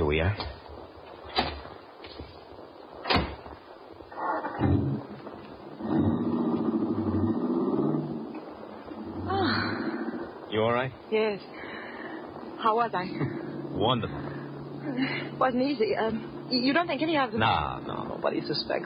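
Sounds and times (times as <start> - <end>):
speech: 0.2 - 0.6, 10.8 - 11.6, 12.6 - 14.3, 15.0 - 18.8
car door slams: 3.0 - 3.4
car engine turning over and idling: 3.0 - 10.5, 11.5 - 18.8.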